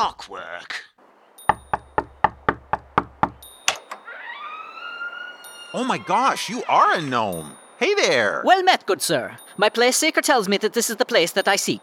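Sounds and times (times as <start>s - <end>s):
speech: 0.0s - 0.9s, 5.7s - 11.8s
sharp knocks on the wooden front door of a tavern: 1.5s - 3.4s.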